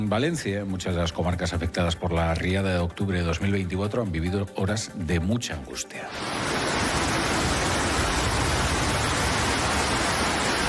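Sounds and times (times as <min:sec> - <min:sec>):
speech: 0:00.0 - 0:06.8
torrential downpour of heavy rain: 0:06.1 - 0:10.6.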